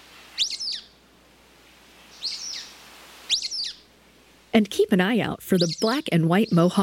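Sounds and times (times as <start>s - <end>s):
quiet background hiss: 0.0s - 6.8s
Sulphur-bellied Flycatcher squeaky calls in canyons: 0.4s - 0.9s, 2.1s - 2.7s, 3.3s - 3.9s
speech: 4.6s - 6.8s.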